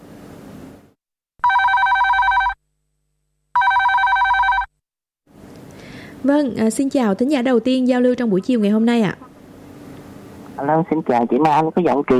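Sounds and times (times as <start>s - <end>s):
telephone in a radio studio ringing for an incoming listener call: 1.4s - 2.6s, 3.6s - 4.7s
speech: 6.2s - 9.3s, 10.6s - 12.1s.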